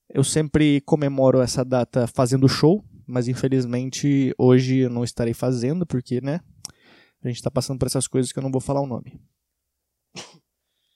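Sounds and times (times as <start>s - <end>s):
speech: 0.1s - 6.5s, 7.2s - 9.4s
single sharp cough: 10.2s - 10.4s.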